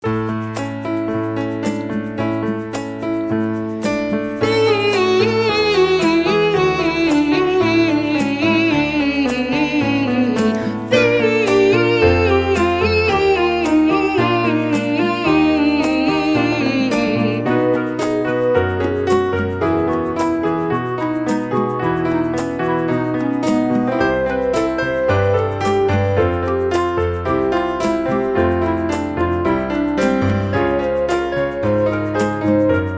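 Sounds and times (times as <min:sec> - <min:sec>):
falling backing track: 0:00.0 - 0:32.9.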